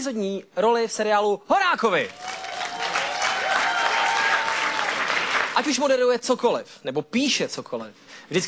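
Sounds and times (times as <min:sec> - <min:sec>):
speech: 0:00.0 - 0:02.3, 0:05.6 - 0:08.4
audience applause: 0:02.1 - 0:05.7.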